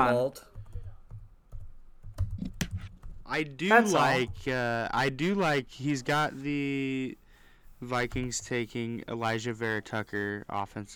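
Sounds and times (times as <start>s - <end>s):
speech: 0.0s - 0.5s, 3.3s - 7.2s, 7.8s - 10.9s
computer keyboard typing: 0.5s - 3.2s.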